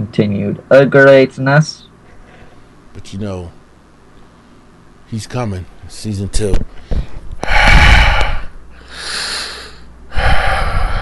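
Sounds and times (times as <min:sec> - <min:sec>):
speech: 0:00.1 - 0:01.8, 0:03.0 - 0:03.6, 0:05.1 - 0:06.8
heavy labored rasping breathing: 0:06.7 - 0:11.0.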